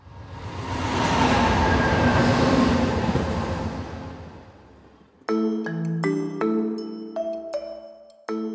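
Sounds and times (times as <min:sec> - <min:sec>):
London Underground metro train rumbling past: 0:00.0 - 0:05.2
short burst of bright musical notes: 0:05.3 - 0:08.5.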